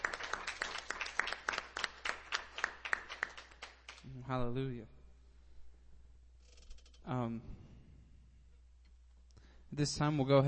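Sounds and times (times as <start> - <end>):
audience clapping in praise during a church service: 0.0 - 4.1
speech: 4.3 - 5.0, 7.1 - 7.7, 9.7 - 10.4.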